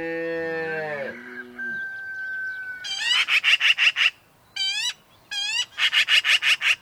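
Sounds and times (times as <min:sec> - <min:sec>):
single long deep cow moo: 0:00.0 - 0:01.7
black-billed magpie harsh rapid chatter: 0:02.9 - 0:06.8.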